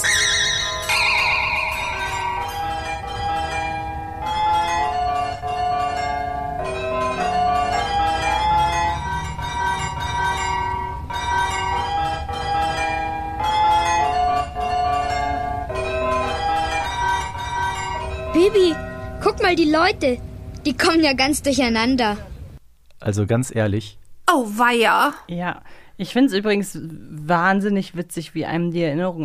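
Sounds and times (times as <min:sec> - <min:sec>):
carillon bells playing a simple children's tune: 0:00.0 - 0:20.5
speech: 0:19.5 - 0:22.3, 0:23.1 - 0:29.2.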